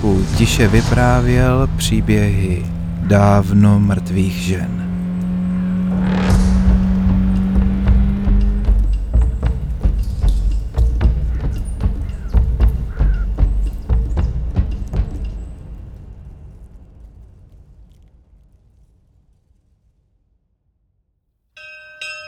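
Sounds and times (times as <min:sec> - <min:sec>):
speech: 0:00.0 - 0:04.9
car engine roaring: 0:00.0 - 0:14.0.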